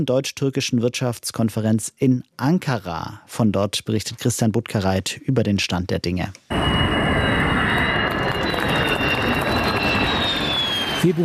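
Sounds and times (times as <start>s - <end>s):
speech: 0.0s - 7.0s, 11.0s - 11.2s
Turkish-built stealth fighter jet with a US-supplied engine roaring on its maiden flight: 6.5s - 11.2s.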